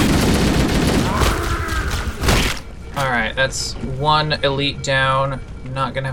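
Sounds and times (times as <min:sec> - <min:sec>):
video game gunfire: 0:00.0 - 0:02.7
video game explosions: 0:00.0 - 0:03.1
speech: 0:03.4 - 0:06.1.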